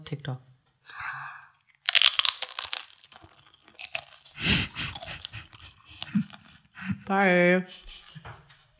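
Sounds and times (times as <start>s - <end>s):
speech: 0.1s - 1.0s, 6.1s - 8.3s
crisp chewing and munching of nachos: 1.6s - 6.8s
crunchy bite into nachos with Green Goddess salad: 1.7s - 6.7s.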